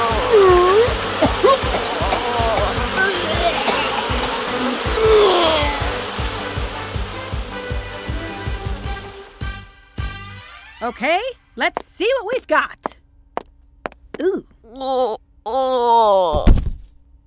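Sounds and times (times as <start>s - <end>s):
swarm of many bees buzzing: 0.0s - 9.4s
speech: 10.9s - 12.8s, 14.2s - 16.6s.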